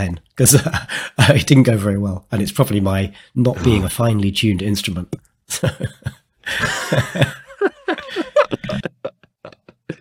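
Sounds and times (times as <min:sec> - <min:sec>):
speech: 0:00.0 - 0:09.0
person coughing: 0:03.6 - 0:03.9
laughter: 0:05.5 - 0:09.9.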